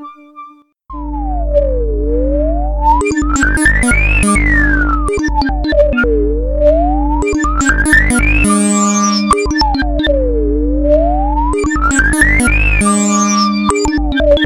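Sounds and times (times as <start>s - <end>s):
Casio VZ dark energy synth combi: 1.0s - 14.4s.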